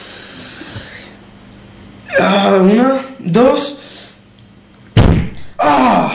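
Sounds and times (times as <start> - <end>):
speech: 2.2 - 3.8
body crashing into an old refrigerator door: 5.0 - 5.5
person groaning in pain: 5.6 - 6.1.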